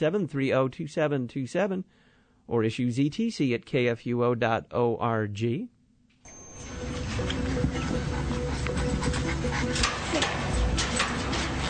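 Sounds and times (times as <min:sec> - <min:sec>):
speech: 0:00.0 - 0:05.7
puppy panting and whimpering: 0:06.8 - 0:11.6.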